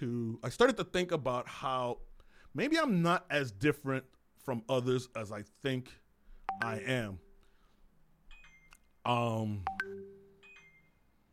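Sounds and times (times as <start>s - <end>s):
speech: 0.0s - 6.0s, 6.6s - 7.2s, 9.0s - 10.0s
faint electronic phone notification beeps: 6.5s - 7.4s, 8.3s - 8.9s, 9.5s - 11.3s
sustained chime-like tone from a phone: 9.7s - 11.2s.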